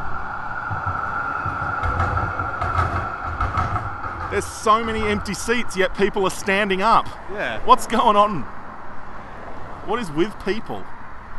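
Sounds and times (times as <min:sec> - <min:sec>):
tram rumbling past: 0:00.0 - 0:10.2
rattling clatters: 0:00.7 - 0:05.5
speech: 0:04.3 - 0:08.6, 0:09.8 - 0:10.9.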